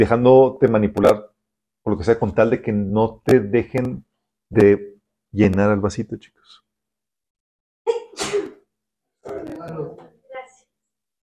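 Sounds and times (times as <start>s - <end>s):
speech: 0.0s - 6.6s
sneeze: 7.9s - 8.7s.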